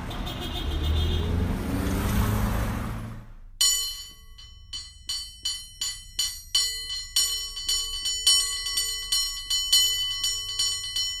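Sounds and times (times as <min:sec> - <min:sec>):
rumbling vehicle passing: 0:00.0 - 0:03.6
cable car bell clanging: 0:03.6 - 0:11.1.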